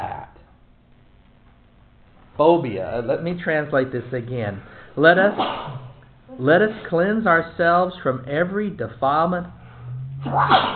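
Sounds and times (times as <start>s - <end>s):
low steady hum: 0.0s - 10.7s
speech: 2.4s - 9.6s, 10.2s - 10.7s
person sneezing: 5.3s - 5.9s, 10.2s - 10.7s.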